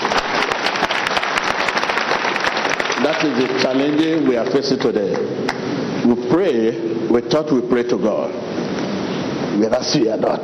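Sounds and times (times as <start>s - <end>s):
crowd clapping: 0.0s - 5.8s
speech: 3.1s - 8.5s, 9.6s - 10.4s.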